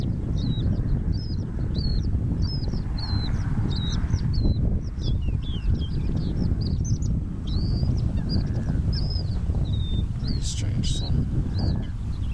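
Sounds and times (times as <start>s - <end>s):
Asian short-toed lark Calandrella cheleensis singing: 0.0s - 12.3s.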